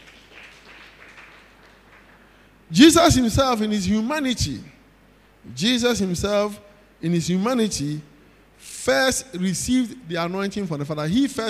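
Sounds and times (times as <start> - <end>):
audience at a Christian worship service clapping: 0.0 - 2.5
speech: 2.7 - 4.7, 5.4 - 11.4.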